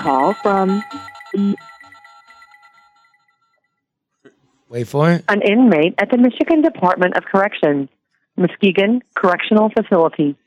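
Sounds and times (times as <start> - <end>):
speech: 0.0 - 1.7, 4.7 - 10.4
short electronic phone ringtone for incoming call: 0.0 - 3.6.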